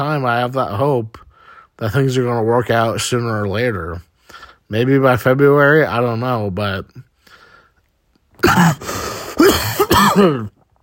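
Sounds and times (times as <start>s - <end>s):
speech: 0.0s - 1.2s, 1.8s - 7.1s, 8.4s - 9.0s, 10.2s - 10.6s
faint breath: 1.2s - 1.8s, 4.2s - 4.7s, 7.2s - 7.9s
harsh coughs with a rough throat-clearing edge: 8.4s - 10.6s.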